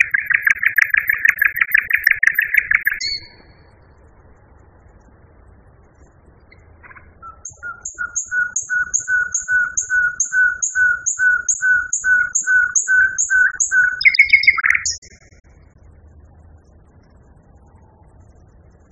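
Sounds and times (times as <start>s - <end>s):
common nightingale song: 0.0s - 4.2s, 6.1s - 15.6s.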